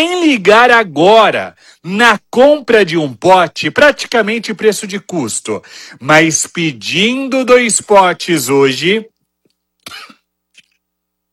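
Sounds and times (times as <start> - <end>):
speech: 0.0 - 9.1
harsh cough over a phone line: 9.8 - 10.3.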